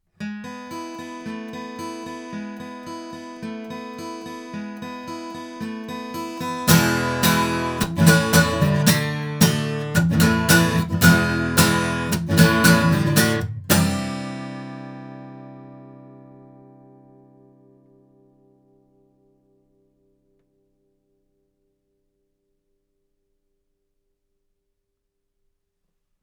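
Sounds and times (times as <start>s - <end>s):
guitar playing: 0.2s - 19.2s.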